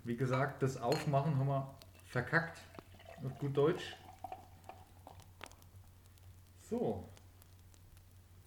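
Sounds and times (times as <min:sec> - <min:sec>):
speech: 0:00.0 - 0:04.0, 0:06.7 - 0:07.2
glass clinks: 0:00.3 - 0:01.2
drink pouring into a glass: 0:01.9 - 0:05.6.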